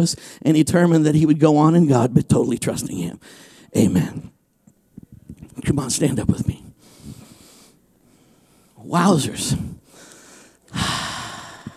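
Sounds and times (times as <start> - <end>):
speech: 0.0 - 4.4, 5.6 - 6.6, 8.8 - 9.8, 10.7 - 11.1
heavy drawn-out exhale and short puffs of breath: 6.8 - 8.8, 9.6 - 11.7.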